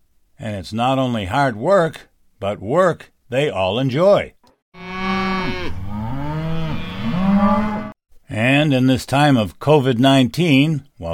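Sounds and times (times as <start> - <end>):
speech: 0.4 - 4.4, 8.3 - 11.1
herd of first-calf heifers mooing in a corral for branding: 4.8 - 8.0.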